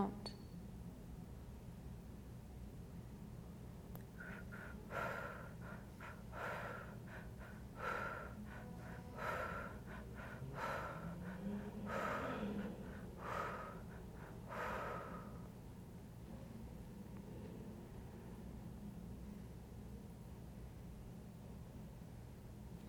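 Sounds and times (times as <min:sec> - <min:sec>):
low hum: 0:00.0 - 0:22.8
heavy rhythmic breathing during a breathwork exercise: 0:04.1 - 0:15.6.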